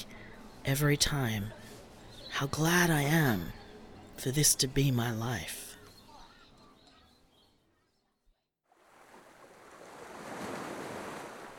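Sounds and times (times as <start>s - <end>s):
speech: 0.7s - 1.6s, 2.4s - 3.6s, 4.2s - 5.6s
ocean waves washing onto a windy winter beach: 8.7s - 11.5s
wind on a winter beach: 8.7s - 11.5s.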